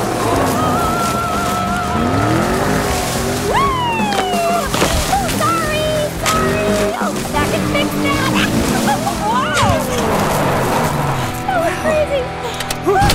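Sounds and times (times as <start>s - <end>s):
laughter: 0.0s - 13.1s
sloshing rumbles: 0.0s - 13.1s
vehicle careening around wildly with continuous roar: 0.0s - 13.1s
voices yelping and shouting: 0.0s - 13.1s.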